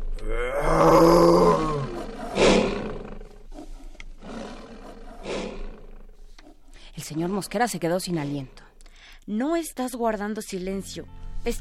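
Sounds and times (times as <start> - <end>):
lion roaring: 0.2 - 6.6
speech: 7.1 - 8.6, 9.3 - 11.5.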